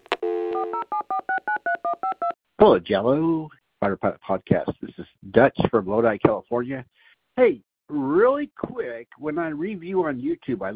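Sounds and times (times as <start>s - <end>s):
telephone dial tone: 0.0s - 2.4s
speech: 0.6s - 1.3s, 1.9s - 10.7s.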